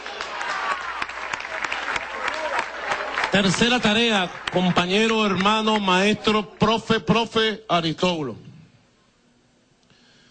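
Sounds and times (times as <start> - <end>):
crowd applauding at an official gathering in Miranda state, Venezuela: 0.0 - 7.0
speech: 3.3 - 8.5.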